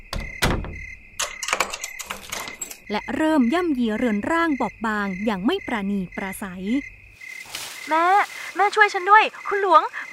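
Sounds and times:
bedroom door slamming shut: 0.0 - 1.0
door bolt rattling and clicking as it is worked: 0.0 - 2.9
speech: 2.9 - 7.0, 7.9 - 10.1.

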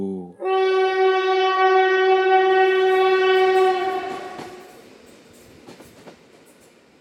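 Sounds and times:
train horn near Talat Phlu railway station at night: 0.4 - 4.8
faint rail rumble: 0.4 - 6.9.

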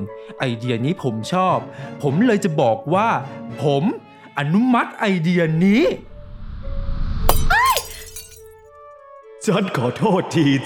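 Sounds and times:
speech: 0.0 - 6.1, 9.5 - 10.6
light bulbs shattering: 7.3 - 8.5.

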